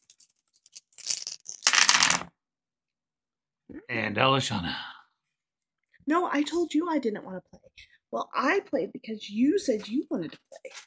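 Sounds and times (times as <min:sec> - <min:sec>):
dice rolling across a hard surface in a dice game: 0:00.0 - 0:02.3
speech: 0:03.9 - 0:04.9, 0:06.1 - 0:10.8.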